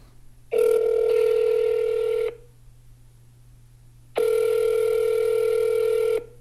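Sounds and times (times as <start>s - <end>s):
faint hum: 0.0s - 6.3s
phone line electronic ring tones through the earpiece: 0.6s - 2.4s, 4.2s - 6.3s.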